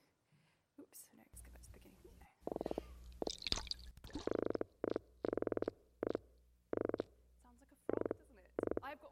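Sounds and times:
Atlantic croaker fish croaking: 0:02.5 - 0:07.1, 0:07.9 - 0:08.8.

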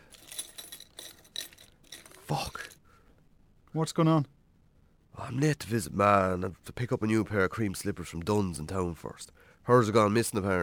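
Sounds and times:
bunch of keys jangling: 0:00.0 - 0:02.8
speech: 0:02.3 - 0:02.6, 0:03.7 - 0:04.3, 0:05.3 - 0:10.6.

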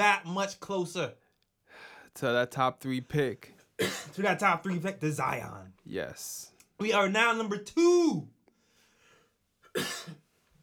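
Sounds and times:
speech: 0:00.0 - 0:01.2, 0:02.1 - 0:08.4, 0:09.8 - 0:10.2
person coughing: 0:03.8 - 0:04.2, 0:09.7 - 0:10.2.

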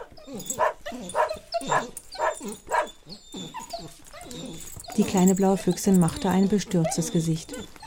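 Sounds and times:
small dog barking excitedly: 0:00.0 - 0:02.9
speech: 0:05.0 - 0:07.7.

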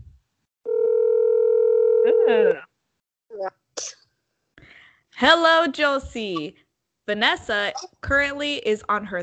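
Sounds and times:
telephone dial tone: 0:00.7 - 0:02.1
speech: 0:02.3 - 0:02.7, 0:05.2 - 0:09.2.

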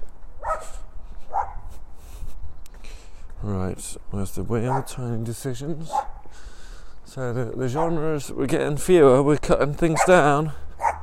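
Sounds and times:
dog barking: 0:00.4 - 0:01.7, 0:04.7 - 0:05.0, 0:05.9 - 0:06.2, 0:07.8 - 0:08.0, 0:10.0 - 0:10.2, 0:10.8 - 0:11.0
speech: 0:03.4 - 0:06.1, 0:07.1 - 0:10.6.

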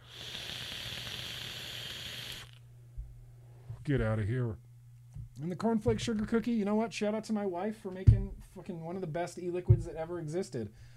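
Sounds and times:
vape coil crackling during a draw: 0:00.0 - 0:02.6
speech: 0:03.9 - 0:04.6, 0:05.4 - 0:10.9
soft thump: 0:08.1 - 0:08.4.

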